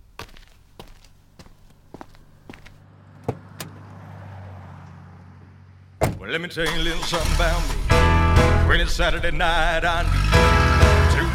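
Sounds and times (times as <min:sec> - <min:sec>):
hollow thunks and knocks of a canister set down inside a car: 0:06.0 - 0:06.2
speech: 0:06.3 - 0:07.8, 0:08.7 - 0:10.9
low steady rumble: 0:07.4 - 0:11.3.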